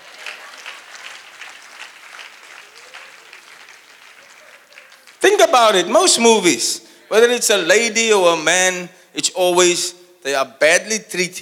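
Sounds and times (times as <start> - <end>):
crowd clapping: 0.0 - 6.0
speech: 5.4 - 11.4.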